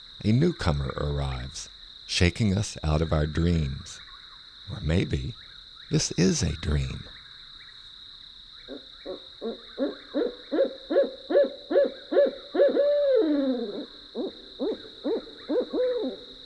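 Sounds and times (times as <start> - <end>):
high insect-like whine: 0.0 - 16.4
speech: 0.2 - 4.1, 4.7 - 7.2
barred owl hooting at night: 8.6 - 16.4.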